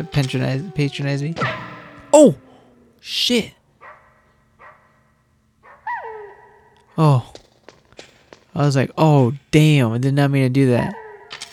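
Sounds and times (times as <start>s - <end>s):
speech: 0.0s - 2.4s, 3.0s - 3.6s, 7.0s - 7.4s, 8.6s - 11.0s
dog barking: 3.8s - 7.0s, 10.9s - 11.4s.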